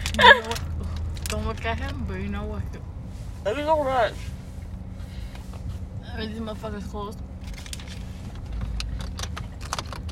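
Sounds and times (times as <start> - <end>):
engine and road rumble inside a moving car: 0.0 - 10.1
speech: 1.5 - 4.3, 6.2 - 7.2.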